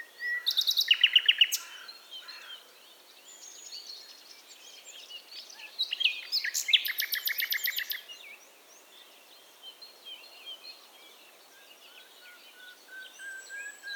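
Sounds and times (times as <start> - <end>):
common nightingale Luscinia megarhynchos singing: 0.0 - 2.4, 3.3 - 8.4, 11.5 - 13.9.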